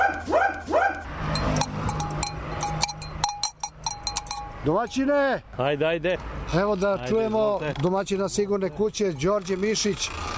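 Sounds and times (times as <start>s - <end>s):
dog barking at the entrance of a safe house: 0.0s - 1.0s
clapper bell clanking with bright metallic strikes: 1.3s - 5.0s
speech: 4.6s - 10.3s.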